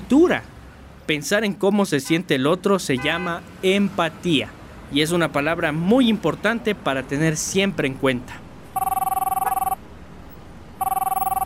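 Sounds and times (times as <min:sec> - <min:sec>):
speech: 0:00.1 - 0:00.5, 0:01.1 - 0:08.4
telephone ringing with a rapid electronic trill: 0:08.8 - 0:09.8, 0:10.8 - 0:11.4.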